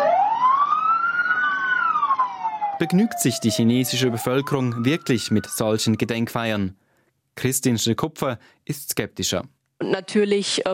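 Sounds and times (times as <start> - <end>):
fire engine sirens wailing in Tianjin, China, during mourning after an explosion: 0.0 - 6.6
speech: 2.8 - 6.8, 7.4 - 10.7.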